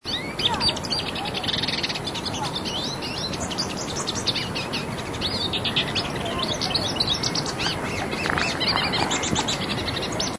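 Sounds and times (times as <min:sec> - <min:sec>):
Sardinian warbler calling: 0:00.0 - 0:10.3.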